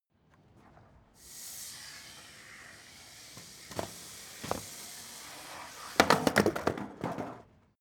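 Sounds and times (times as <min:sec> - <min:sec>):
skateboard sliding indoors: 0:00.2 - 0:07.7
skateboard dropping indoors: 0:03.4 - 0:07.7.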